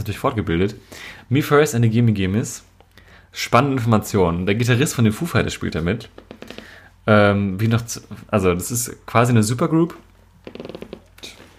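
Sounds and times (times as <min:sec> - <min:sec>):
speech: 0:00.0 - 0:02.7, 0:03.3 - 0:11.0
chair creaking: 0:06.1 - 0:06.8, 0:10.4 - 0:11.5.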